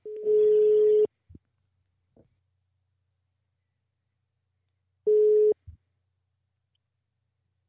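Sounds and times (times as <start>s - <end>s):
phone line ringback tone: 0.1s - 1.1s, 5.1s - 5.6s.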